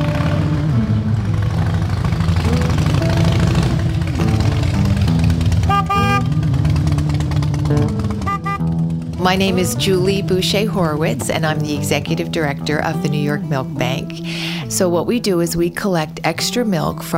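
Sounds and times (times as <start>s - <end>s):
motorcyclists riding through New York City traffic: 0.0s - 13.9s
dense New York City traffic engines rumbling: 0.0s - 16.5s
car horns honking in New York City traffic: 5.5s - 6.6s, 8.0s - 8.8s
speech: 9.2s - 17.1s.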